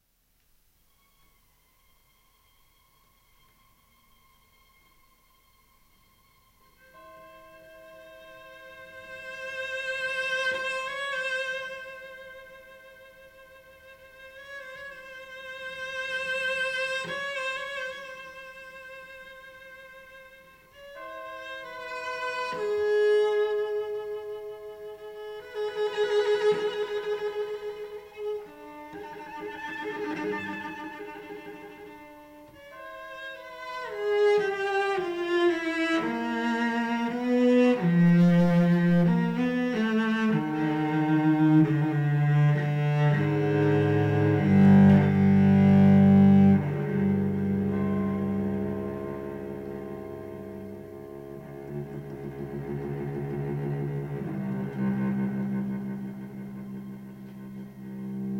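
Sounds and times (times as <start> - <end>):
string orchestra: 0.5 - 58.3
solo cello: 0.6 - 58.3
bells: 4.4 - 13.6, 18.6 - 28.7, 30.4 - 37.3, 46.2 - 52.4.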